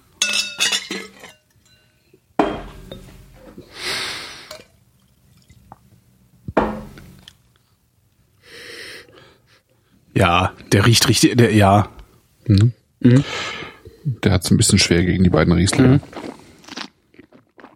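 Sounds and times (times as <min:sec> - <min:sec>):
wine glass clinking: 0:00.2 - 0:03.3
speech: 0:10.2 - 0:13.6, 0:14.2 - 0:16.3.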